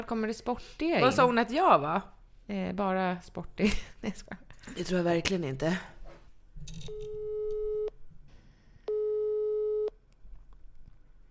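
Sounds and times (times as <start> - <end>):
speech: 0.0 - 6.0, 6.6 - 7.3
telephone busy signal: 7.0 - 7.9, 8.9 - 9.9.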